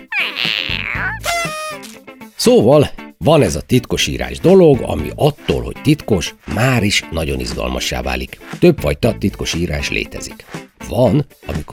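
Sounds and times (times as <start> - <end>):
cat meowing: 0.0 - 2.0
speech: 0.2 - 11.7.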